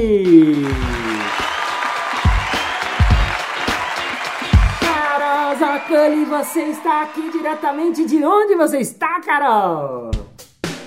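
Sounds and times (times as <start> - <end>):
speech: 0.0 - 0.9, 5.8 - 10.2
group applauding: 0.0 - 8.7.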